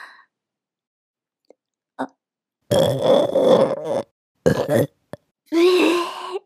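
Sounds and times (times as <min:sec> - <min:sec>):
speech: 0:02.0 - 0:03.4
person burping: 0:02.7 - 0:05.3.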